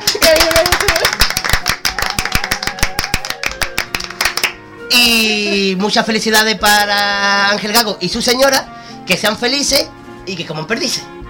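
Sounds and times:
applause celebrating a wedding: 0.0 - 4.6
speech: 5.2 - 11.1.

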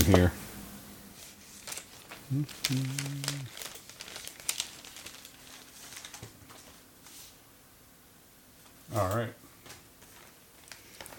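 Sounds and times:
speech: 0.1 - 0.4, 2.3 - 3.6, 8.9 - 9.4
paper crinkling and rustling: 1.2 - 6.8, 10.0 - 11.1
person humming a brief tone: 2.3 - 3.6.

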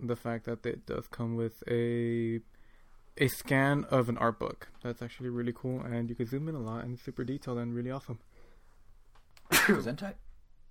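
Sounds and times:
speech: 0.0 - 2.6, 3.2 - 8.3, 9.6 - 10.2
person sneezing: 9.5 - 9.9.

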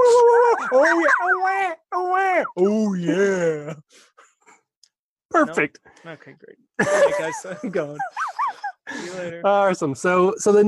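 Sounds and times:
laughter: 0.3 - 1.4, 6.8 - 9.4
dog howling and whimpering: 0.4 - 1.7
speech: 0.7 - 4.1, 5.3 - 10.6.

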